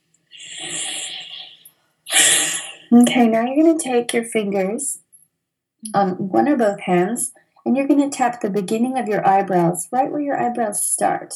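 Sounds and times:
deep breath: 0.3 - 2.9
speech: 2.9 - 5.0, 5.8 - 11.3.

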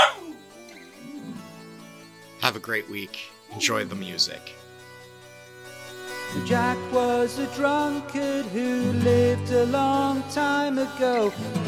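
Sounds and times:
dog barking: 0.0 - 0.4
dog whining: 0.0 - 1.7
speech: 2.5 - 4.6, 6.3 - 11.6.

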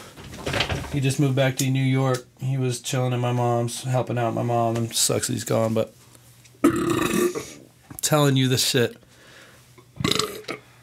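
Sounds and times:
speech: 0.9 - 6.0, 8.1 - 9.0
person burping after drinking beer: 6.6 - 7.6, 10.0 - 10.7.

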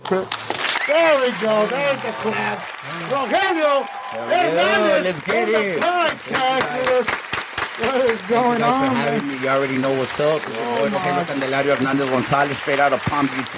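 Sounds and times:
lively voices: 0.0 - 13.5
people cheering: 0.0 - 13.5
small group clapping: 0.0 - 13.5
speech: 0.1 - 7.2, 7.8 - 13.5.

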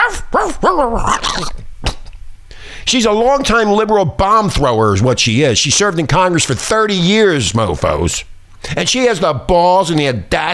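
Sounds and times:
dog barking and growling: 0.0 - 2.0
speech: 2.9 - 10.5.

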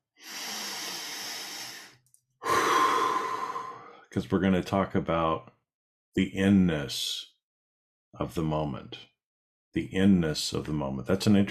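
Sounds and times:
deep breath: 0.0 - 4.1
speech: 4.1 - 7.3, 8.1 - 9.1, 9.8 - 11.4.

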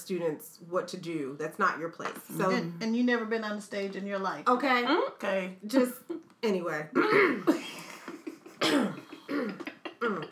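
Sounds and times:
speech: 0.1 - 7.8, 8.7 - 10.3
person clearing throat: 7.0 - 7.7, 8.5 - 10.3
person coughing: 7.0 - 7.8, 8.5 - 10.3.

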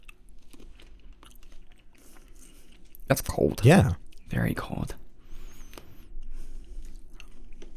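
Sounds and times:
chewing crunchy frozen corn kernels: 0.0 - 3.4, 6.5 - 7.7
speech: 3.1 - 5.0.

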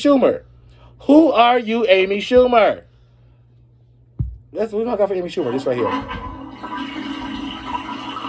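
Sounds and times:
speech: 0.0 - 2.9, 4.5 - 6.9
toilet flushing: 5.2 - 8.2.

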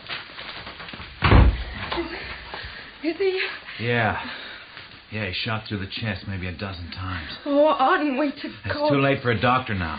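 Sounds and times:
door shut with a heavy low thud: 1.2 - 2.0
speech: 3.0 - 4.4, 5.1 - 9.9.

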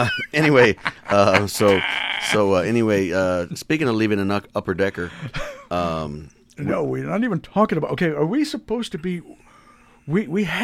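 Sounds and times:
laughter: 0.0 - 2.5
speech: 0.0 - 9.4, 10.1 - 10.6
person's voice imitating goat bleats: 1.4 - 2.5.

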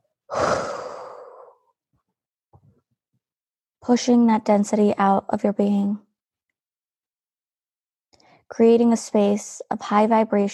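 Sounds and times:
forceful exhale through the mouth: 0.3 - 1.6
speech: 3.9 - 6.0, 8.5 - 10.5.

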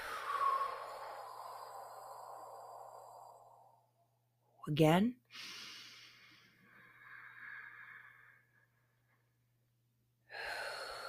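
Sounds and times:
slow deep breath out during a guided breathing exercise: 0.0 - 4.1, 5.3 - 9.0, 10.3 - 11.0
speech: 4.7 - 5.6.

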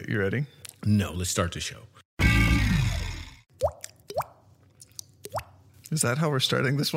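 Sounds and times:
speech: 0.1 - 2.0, 5.9 - 6.9
voice imitating water drops with the mouth: 3.6 - 5.6.

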